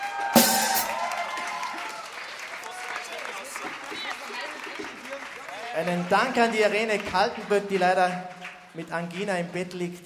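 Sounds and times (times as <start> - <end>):
audience applause at a live event: 0.0 - 8.7
speech: 5.8 - 10.0.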